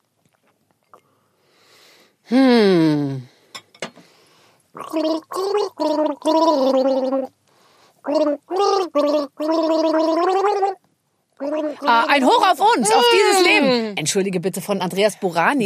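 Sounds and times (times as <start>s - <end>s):
speech: 2.3s - 2.6s, 4.9s - 7.4s, 8.0s - 10.8s, 11.4s - 15.6s
person gargling a song melody with bubbling water: 2.3s - 3.3s, 4.8s - 7.3s, 8.0s - 10.8s, 11.4s - 12.2s, 12.9s - 14.0s.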